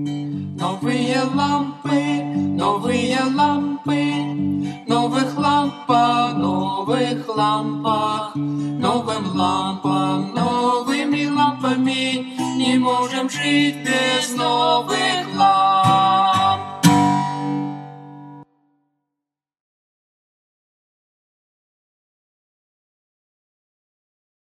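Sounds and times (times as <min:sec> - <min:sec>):
Russian song: 0:00.1 - 0:18.4.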